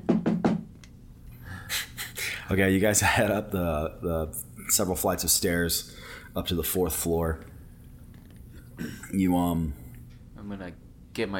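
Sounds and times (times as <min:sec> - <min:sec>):
knocking on a door: 0:00.0 - 0:00.7
speech: 0:02.5 - 0:07.6, 0:08.8 - 0:09.8, 0:10.4 - 0:11.3.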